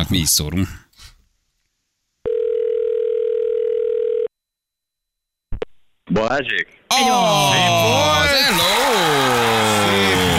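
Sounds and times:
speech: 0.0 - 0.8, 6.2 - 10.0
telephone ringing tone of an outgoing call to a radio listener: 2.2 - 4.3.

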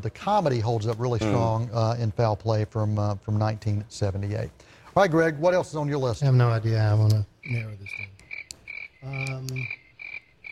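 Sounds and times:
speech: 0.0 - 8.1, 9.0 - 9.8
crickets chirping: 7.4 - 10.4
frog croaking: 7.4 - 10.4.

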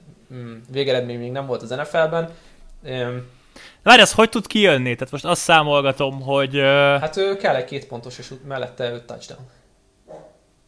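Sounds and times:
quiet steady hum: 0.0 - 10.6
speech: 0.3 - 9.6
dog bark: 10.1 - 10.4.

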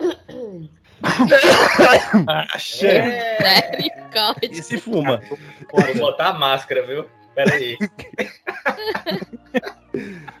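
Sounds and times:
loud coughing fit with harsh repeated coughs: 0.0 - 5.2, 7.4 - 9.8
laughter: 1.0 - 6.3, 7.4 - 10.3
speech: 1.1 - 10.3.

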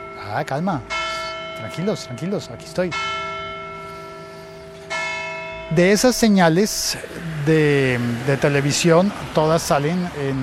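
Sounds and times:
bell ringing as a cue: 0.0 - 6.9
speech: 0.3 - 1.0, 1.6 - 3.2, 5.7 - 10.4.

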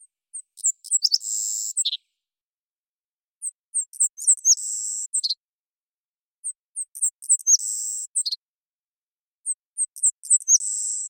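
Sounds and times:
Savannah sparrow Passerculus sandwichensis song in Washington, Pacific Northwest, United States: 0.0 - 2.0, 3.4 - 5.4, 6.4 - 8.4, 9.4 - 11.0.

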